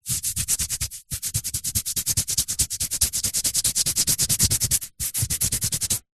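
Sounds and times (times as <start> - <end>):
human skin itching: 0.0 - 6.1.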